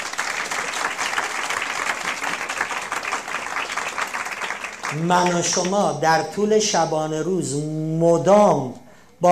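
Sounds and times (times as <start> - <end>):
crowd applauding: 0.0 - 5.8
speech: 4.9 - 9.3.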